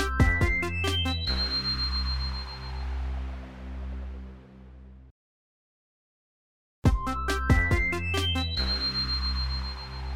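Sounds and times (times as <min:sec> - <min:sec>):
melodic phone ringtone: 0:00.0 - 0:02.8, 0:07.4 - 0:10.0.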